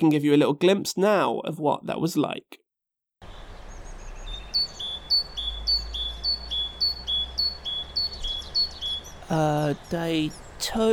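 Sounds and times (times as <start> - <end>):
speech: 0.0 - 2.6, 9.3 - 10.9
small bird chirping in a forest: 3.2 - 10.9.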